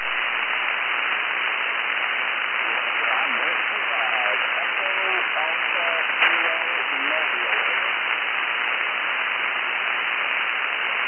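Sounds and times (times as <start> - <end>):
radio static hiss: 0.0 - 11.0
weak garbled voice from a mobile radio station: 2.5 - 8.1.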